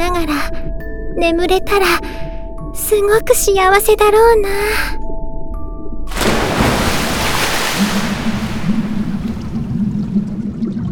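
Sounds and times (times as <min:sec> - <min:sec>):
speech: 0:01.2 - 0:02.2, 0:02.8 - 0:05.0
object plunging into water: 0:06.1 - 0:10.5.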